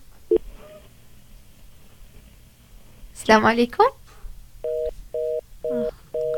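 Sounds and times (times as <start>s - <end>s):
speech: 3.2s - 4.0s
electronic telephone tones for an incoming call to a radio studio: 4.7s - 6.3s.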